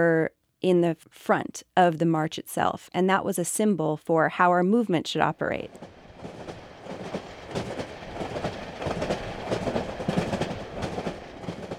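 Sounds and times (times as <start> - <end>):
speech: 0.0 - 6.0
train rolling along rails with low rumble: 5.3 - 11.7
train wheels clickety-clack over track joints: 5.7 - 11.7.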